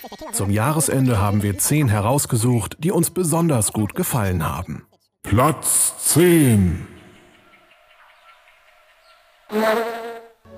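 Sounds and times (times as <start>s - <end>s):
speech: 0.0s - 7.0s, 9.5s - 10.0s
fly buzzing in a video game: 9.0s - 10.5s.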